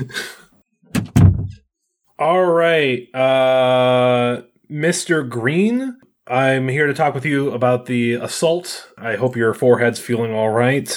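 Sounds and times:
speech: 0.0 - 0.4, 2.2 - 10.9
door swinging open with an airy rush: 0.9 - 1.6.

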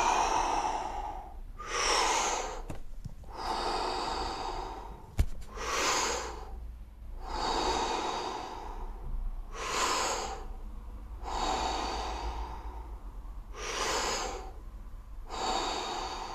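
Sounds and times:
deep rhythmic breathing during a breathing exercise: 0.0 - 16.3.

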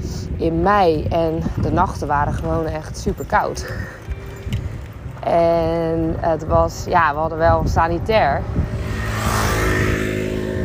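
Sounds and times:
speech: 0.4 - 4.0, 5.2 - 8.8
scooter engine droning past: 8.3 - 10.6.

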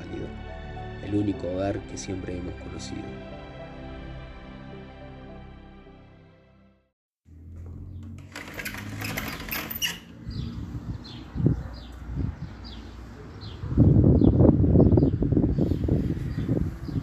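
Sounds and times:
speech: 1.1 - 3.4
birds chirping outdoors: 9.0 - 17.0.

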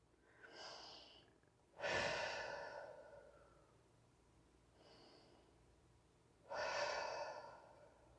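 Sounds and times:
deep breathing in through the nose and out through the mouth: 0.3 - 3.8, 4.7 - 5.6, 6.4 - 8.1.

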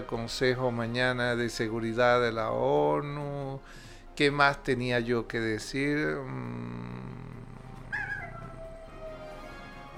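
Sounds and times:
speech: 0.0 - 7.3
coyote howling: 7.6 - 9.7.

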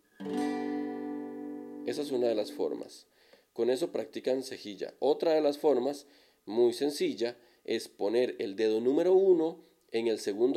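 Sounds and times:
guitar chord strummed and ringing: 0.1 - 2.8
speech: 1.9 - 10.5.

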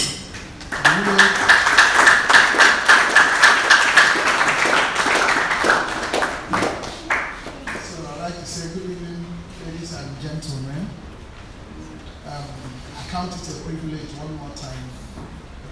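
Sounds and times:
audience clapping in unison after a prayer: 0.4 - 8.0.

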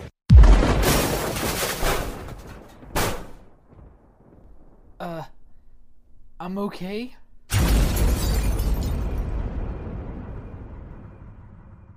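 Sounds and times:
missile explosion boom with rumbling tail: 0.3 - 4.9, 7.5 - 11.9
speech: 6.4 - 7.2.

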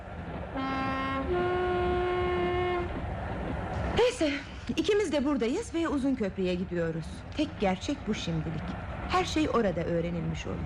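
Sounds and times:
train rumbling along the tracks: 0.0 - 10.6
train horn two-toned blast: 0.5 - 3.0
speech: 4.0 - 10.6.

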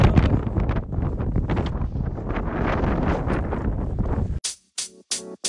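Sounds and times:
strong wind buffeting microphone on a mountain hiking trail: 0.0 - 4.4.

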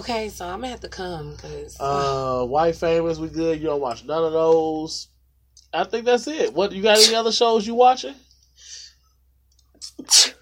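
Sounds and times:
speech: 0.0 - 5.1, 5.7 - 8.8, 10.0 - 10.4
sharp intake of breath: 7.0 - 7.2, 8.6 - 9.0
single loud sneeze: 7.0 - 7.2, 9.8 - 10.4.

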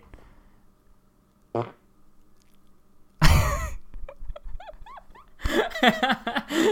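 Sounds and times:
loud raspy fart: 1.5 - 1.8
people laughing: 4.2 - 6.7.

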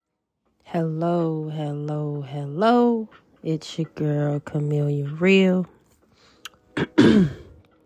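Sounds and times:
speech: 0.7 - 5.8
throat clearing: 6.8 - 7.6.

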